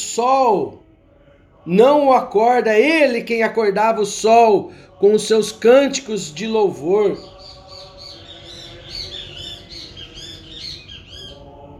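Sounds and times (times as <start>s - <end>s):
speech: 0.2s - 0.9s, 1.6s - 7.3s
birds squawking and chirping: 4.0s - 11.7s.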